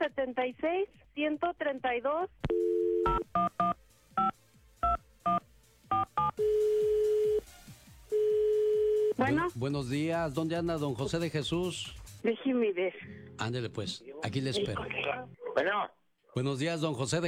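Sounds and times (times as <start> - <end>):
speech: 0.0 - 5.0, 9.2 - 17.2
steady telephone dial tone: 2.5 - 3.2, 6.2 - 7.4, 8.1 - 9.2.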